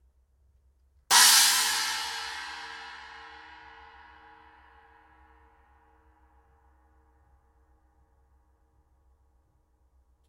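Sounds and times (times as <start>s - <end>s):
custom hybrid china cymbal: 1.1s - 5.5s.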